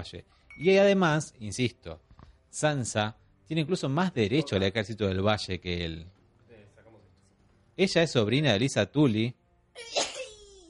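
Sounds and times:
speech: 0.0s - 6.2s, 7.8s - 10.1s
single fairly loud sneeze: 9.8s - 10.5s.

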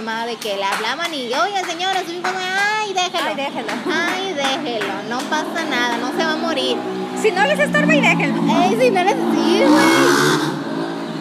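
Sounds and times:
speech: 0.0s - 10.5s
loud car exhaust revving outside: 3.8s - 11.2s.

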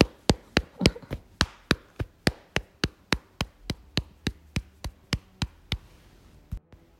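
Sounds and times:
three middle fingertips tapping lightly on an upper arm: 0.0s - 6.6s.

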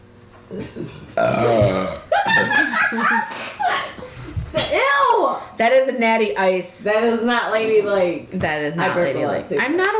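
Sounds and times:
speech: 0.5s - 4.1s, 4.7s - 9.9s
loud drawn-out burp: 1.2s - 2.1s
people laughing and snickering: 2.1s - 4.3s.

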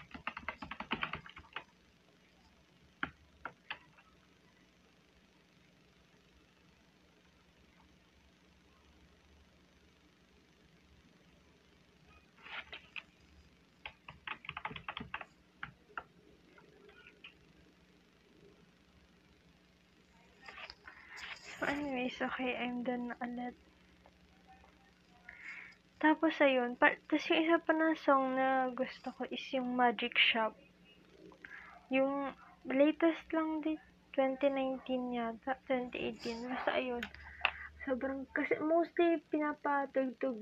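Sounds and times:
typing on a stiff computer keyboard: 0.0s - 1.7s, 3.0s - 4.0s, 13.8s - 16.1s
low steady hum: 0.0s - 40.3s
speech: 21.6s - 23.7s, 26.0s - 30.6s, 31.9s - 37.2s, 37.8s - 40.3s.

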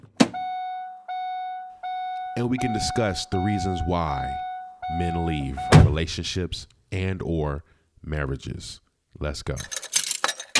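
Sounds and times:
electronic chime tones from the car: 0.4s - 5.9s
speech: 2.4s - 9.9s
car door shutting with a solid thunk: 5.6s - 6.0s.

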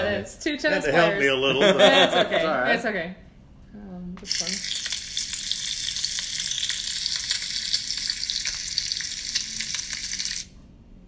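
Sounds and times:
speech: 0.0s - 4.8s
laughter: 0.9s - 2.7s
bacon frying: 4.2s - 10.5s.

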